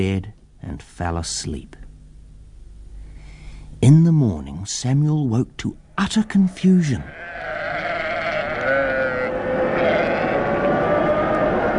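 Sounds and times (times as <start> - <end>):
speech: 0.0 - 1.8, 3.8 - 7.5
crowd of sheep bleating in a pen: 7.0 - 11.7.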